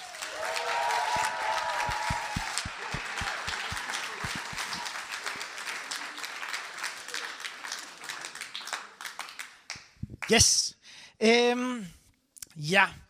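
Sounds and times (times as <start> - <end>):
people cheering: 0.0 - 8.2
audience applauding: 0.0 - 9.8
speech: 10.3 - 12.0, 12.6 - 13.0.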